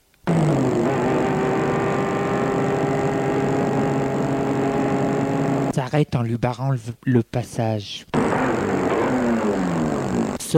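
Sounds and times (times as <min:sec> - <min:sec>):
car engine running at a path crossing: 0:00.3 - 0:05.7, 0:08.2 - 0:09.8
speech: 0:05.9 - 0:08.2.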